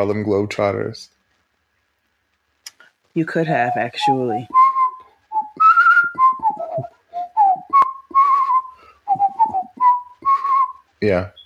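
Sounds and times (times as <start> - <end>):
speech: 0.0 - 1.2, 3.2 - 4.6, 11.0 - 11.4
person whistling a lively bouncy tune: 3.6 - 10.8.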